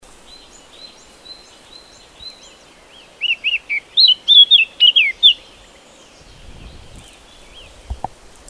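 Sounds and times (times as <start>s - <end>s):
faint background bird notes: 0.0s - 8.4s
Eurasian blackcap song: 0.2s - 8.4s.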